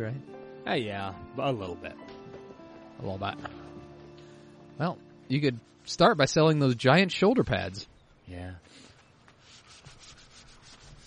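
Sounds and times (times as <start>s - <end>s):
speech: 0.0s - 2.2s, 3.0s - 3.7s, 4.8s - 8.8s
sanding of a wooden boat: 9.4s - 11.0s.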